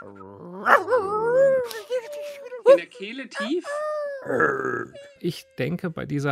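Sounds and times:
person vocally imitating a dog-like creature howling and yelping: 0.0 - 2.8, 3.7 - 5.0
speech: 2.7 - 6.3.

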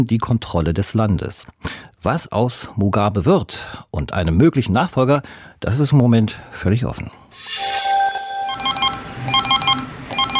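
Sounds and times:
speech: 0.0 - 7.8
smartphone ringtone with trilling electronic tones: 7.5 - 10.3.

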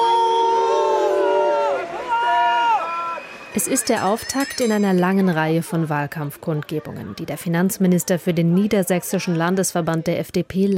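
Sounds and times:
anti-mask protesters shouting at an outdoor election campaign rally: 0.0 - 4.0
speech: 3.6 - 10.7.

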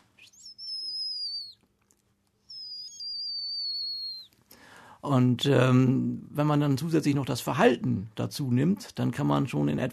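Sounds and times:
faint hum: 0.0 - 9.9
songbird aerial predator alarm call whistles: 0.2 - 1.6, 2.5 - 4.3
speech: 5.0 - 9.9.

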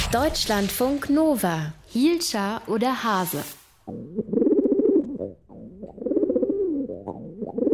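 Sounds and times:
speech: 0.1 - 4.4
carrier pigeon cooing: 3.8 - 7.7.

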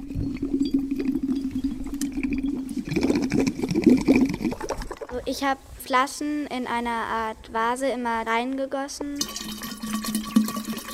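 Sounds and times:
air from inflated balloon bubbling through a straw into a glass of water: 0.0 - 5.2, 9.2 - 10.9
speech: 5.2 - 9.6.

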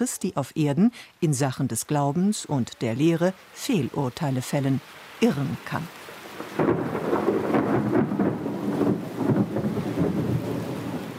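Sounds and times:
speech: 0.0 - 7.0
steady rain in a heavy thunderstorm over Rome: 0.0 - 11.1
thunder rumbling and cracking in a heavy thunderstorm over Rome: 6.3 - 11.1.

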